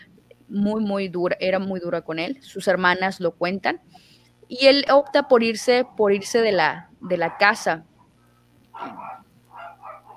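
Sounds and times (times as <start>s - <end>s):
low hum: 0.0s - 10.1s
speech: 0.5s - 7.9s, 8.8s - 9.2s
dogs fighting, barking and snarling: 4.8s - 8.1s, 8.7s - 10.1s.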